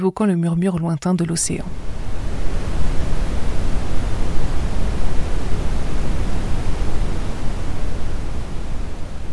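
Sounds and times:
speech: 0:00.0 - 0:01.8
brown noise hiss: 0:01.4 - 0:09.3.

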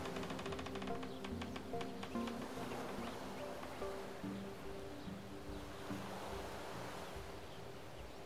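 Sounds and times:
thin tonal sounds: 0:00.0 - 0:07.9
faint breezy hiss: 0:00.0 - 0:08.2
small waves washing at the edge of a large lake by a wooden jetty: 0:00.0 - 0:08.2.

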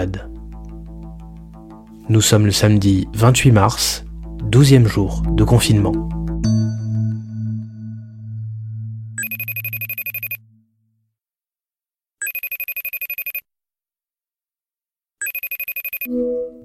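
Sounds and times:
speech: 0:00.0 - 0:00.3, 0:02.1 - 0:06.2
low musical tone: 0:00.0 - 0:09.2, 0:16.1 - 0:16.6
telephone ringing in buzzing bursts: 0:09.2 - 0:10.4, 0:12.2 - 0:13.4, 0:15.2 - 0:16.2.

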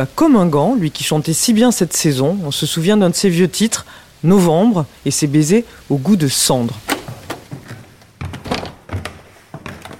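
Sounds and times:
speech: 0:00.0 - 0:07.0
heavy footsteps on creaking wooden stairs of a home in Paris: 0:06.8 - 0:09.9.

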